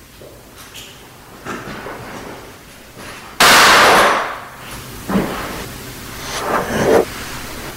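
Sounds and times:
quiet hissy background: 0:01.8 - 0:07.7
gunshot: 0:03.4 - 0:04.4.

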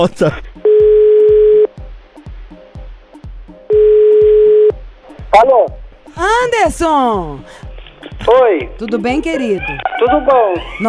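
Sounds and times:
speech: 0:00.0 - 0:00.5, 0:05.4 - 0:07.6, 0:08.2 - 0:10.8
telephone line tones while placing a call: 0:00.7 - 0:01.7, 0:03.7 - 0:04.8.

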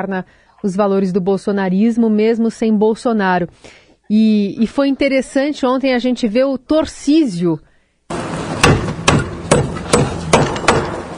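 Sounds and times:
speech: 0:00.0 - 0:08.2
auction gavel banging at the B3 exchange after the Rodoanel auction: 0:08.6 - 0:11.1.

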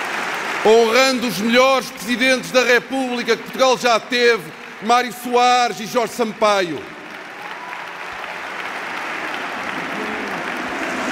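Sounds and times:
large crowd applauding: 0:00.0 - 0:11.1
speech: 0:00.6 - 0:06.9.

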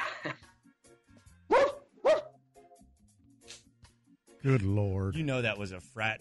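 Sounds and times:
dog barking: 0:01.5 - 0:02.4
speech: 0:04.4 - 0:06.2.

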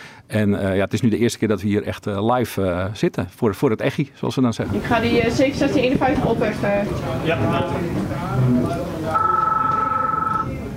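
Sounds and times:
low noise: 0:00.0 - 0:10.7
speech: 0:00.3 - 0:08.8
telephone ringing in Utrecht: 0:09.1 - 0:10.6.

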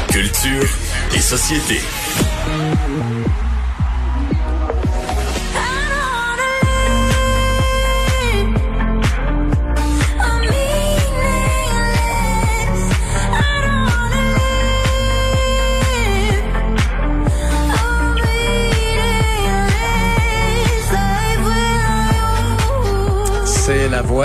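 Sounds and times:
speech: 0:00.2 - 0:03.4
pop song with woman's singing voice over a steady beat: 0:02.1 - 0:24.2.

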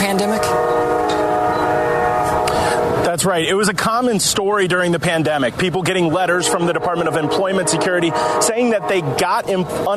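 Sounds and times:
train horn blaring: 0:00.0 - 0:03.4, 0:05.9 - 0:09.8
train rumbling past: 0:00.0 - 0:09.9
speech: 0:03.2 - 0:09.9.

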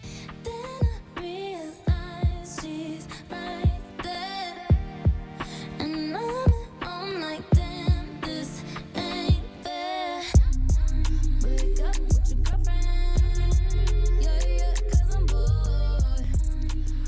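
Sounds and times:
pop song with melodic vocal over sparse punchy beats and heavy bass: 0:00.0 - 0:17.0.

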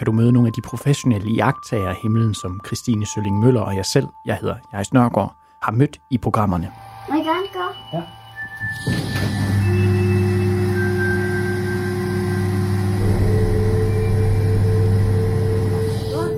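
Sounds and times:
speech: 0:00.0 - 0:09.9
large motorized telescope dome electric motor droning: 0:08.6 - 0:16.3.

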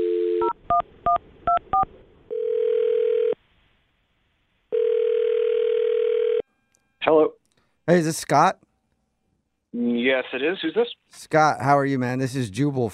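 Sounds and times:
telephone dial tone: 0:00.0 - 0:00.6, 0:02.3 - 0:03.4, 0:04.7 - 0:06.4
long steady telephone ringing tones: 0:00.0 - 0:03.4, 0:04.7 - 0:06.5
speech: 0:07.1 - 0:08.6, 0:09.7 - 0:12.9.

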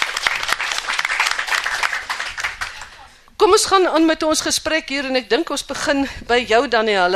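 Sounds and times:
audience applause: 0:00.0 - 0:03.1
speech: 0:03.4 - 0:07.1.

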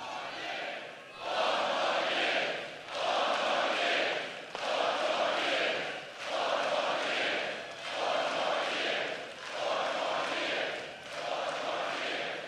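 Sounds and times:
large rally crowd chanting a slogan: 0:00.0 - 0:12.4.

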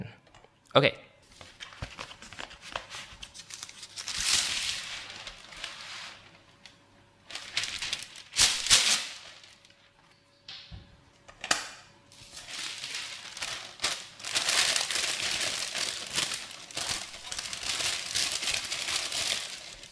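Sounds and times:
speech: 0:00.0 - 0:01.0
baking paper crinkling and crumpling into a pan: 0:01.3 - 0:06.6, 0:07.2 - 0:10.0, 0:12.2 - 0:19.9.

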